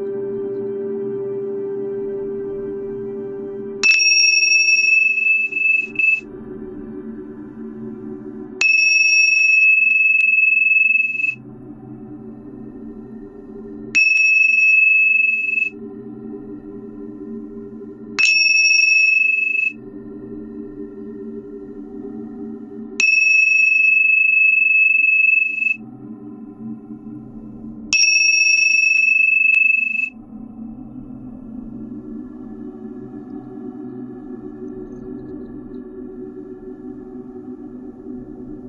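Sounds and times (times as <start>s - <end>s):
steady low droning tone: 0.0s - 38.6s
bright clear meditation chime ringing during a guided meditation: 3.8s - 6.2s, 8.6s - 11.4s, 14.0s - 15.8s, 18.2s - 19.8s, 23.0s - 25.8s, 28.0s - 30.1s.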